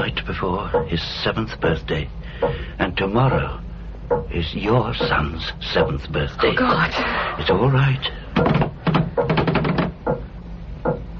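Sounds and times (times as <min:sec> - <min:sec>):
speech: 0:00.0 - 0:08.6
rapid knocking on a door: 0:04.1 - 0:04.4, 0:05.0 - 0:06.0, 0:08.4 - 0:11.1
door being rattled and worked: 0:08.4 - 0:10.2.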